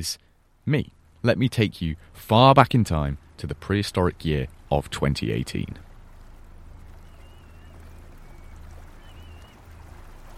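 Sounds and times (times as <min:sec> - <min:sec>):
speech: 0:00.0 - 0:05.9
water lapping around a small fishing vessel at the River Tamar mouth: 0:04.1 - 0:10.3.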